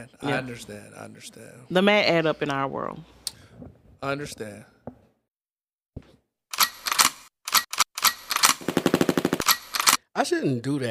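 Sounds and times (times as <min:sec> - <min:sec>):
speech: 0:00.0 - 0:04.7, 0:10.2 - 0:10.8
machine gun fire sound effect: 0:08.3 - 0:10.0.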